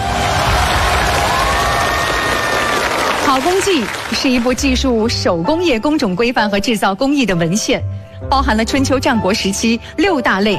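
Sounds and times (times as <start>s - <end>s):
studio audience applause: 0.0s - 4.7s
speech: 3.4s - 10.5s.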